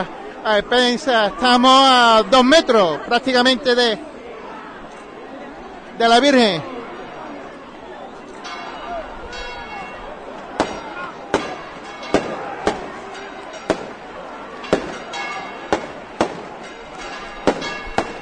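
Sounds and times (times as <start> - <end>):
speech: 0.0 - 4.1, 6.0 - 6.8
crowd murmur: 0.0 - 18.2
festival rockets exploding: 10.6 - 18.2.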